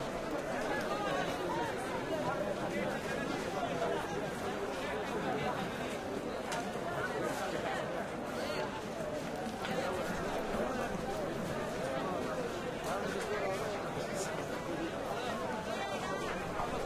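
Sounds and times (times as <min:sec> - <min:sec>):
busy market: 0:00.0 - 0:16.8.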